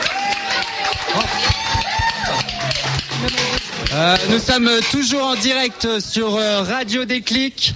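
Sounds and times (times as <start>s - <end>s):
scattered voices cheering and whooping: 0.0s - 3.1s
audience applauding a batucada percussion group: 0.0s - 4.4s
speech: 4.0s - 7.7s.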